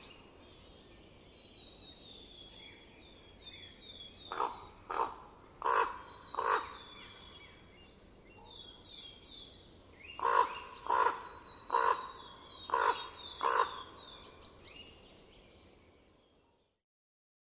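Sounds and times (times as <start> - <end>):
small birds giving high thin calls: 1.4 - 15.4
common raven croaking in winter: 4.3 - 6.8, 10.2 - 14.1.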